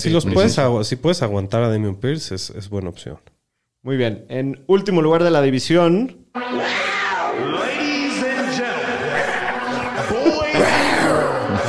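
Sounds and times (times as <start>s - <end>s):
speech: 0.0s - 6.8s
laughter: 7.3s - 11.6s
person's voice imitating a jaguar roar: 10.3s - 11.6s.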